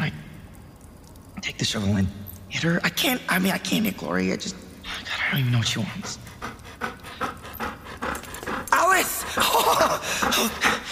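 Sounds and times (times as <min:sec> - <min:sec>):
speech: 0:01.5 - 0:06.3, 0:09.4 - 0:10.9
dog panting: 0:05.8 - 0:10.9.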